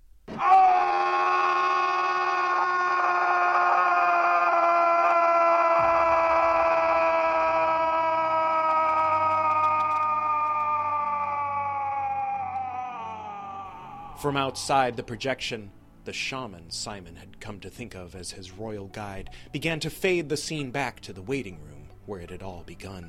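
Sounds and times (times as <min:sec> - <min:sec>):
man screaming: 0:00.3 - 0:15.1
speech: 0:14.2 - 0:23.0.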